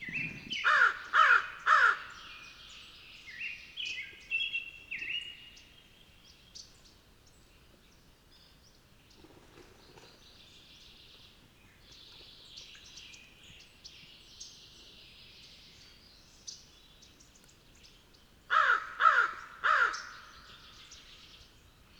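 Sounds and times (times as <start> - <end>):
American crow Corvus brachyrhynchos calling: 0.0 - 2.3, 18.5 - 20.6.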